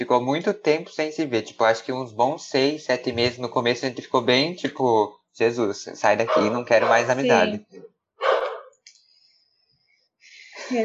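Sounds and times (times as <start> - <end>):
speech: 0.0 - 8.4
laughter: 0.1 - 7.6, 10.4 - 10.8
dog barking: 6.2 - 7.3, 8.2 - 8.7.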